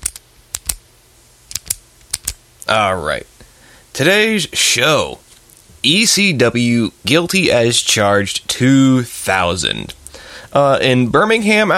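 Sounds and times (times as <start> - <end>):
plastic clicks and snaps from opening a new pack of pens: 0.0 - 0.8, 1.5 - 2.4
speech: 2.7 - 3.4, 4.0 - 5.2, 5.8 - 11.7.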